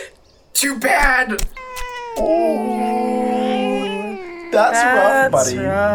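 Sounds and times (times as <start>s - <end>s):
speech: 0.7s - 1.6s, 2.2s - 2.8s, 4.6s - 5.9s
distressed cat yowling: 1.5s - 5.6s.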